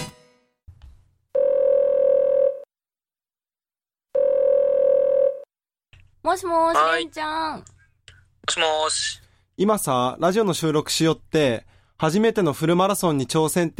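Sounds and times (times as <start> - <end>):
long steady telephone ringback tones: 1.4 - 2.7, 4.2 - 5.5
speech: 6.3 - 7.8, 8.6 - 13.7.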